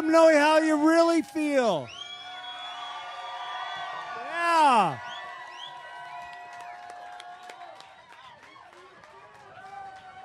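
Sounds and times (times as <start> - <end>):
speech: 0.1 - 2.0, 4.5 - 5.1
large crowd cheering for the band: 0.4 - 10.2
high whistles from crowd: 1.9 - 3.7
people clapping: 1.9 - 10.2.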